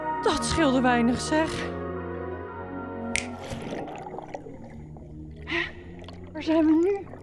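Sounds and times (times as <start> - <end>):
speech: 0.2 - 1.8, 6.4 - 7.1
finger snap: 3.1 - 3.4
bubbling watery swirls: 3.2 - 7.2.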